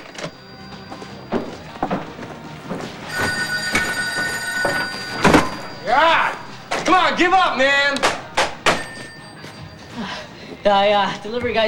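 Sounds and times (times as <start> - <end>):
telephone bell ringing: 0.0 - 2.1, 3.0 - 7.6, 8.6 - 10.6
speech: 7.0 - 8.1, 10.6 - 11.6.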